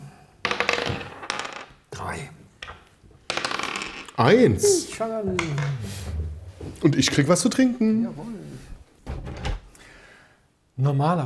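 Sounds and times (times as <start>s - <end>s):
dice rolling on a hard tabletop: 0.4s - 1.9s, 2.6s - 4.4s, 5.4s - 5.8s
speech: 2.0s - 2.4s, 4.2s - 6.1s, 6.8s - 8.7s, 10.8s - 11.2s.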